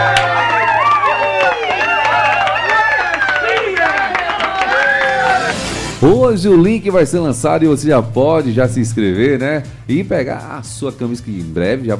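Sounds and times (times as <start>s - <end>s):
crowd hand clapping applause: 0.0s - 5.9s
lively crowd cheering with excited voices: 0.0s - 6.6s
speech: 6.0s - 11.9s.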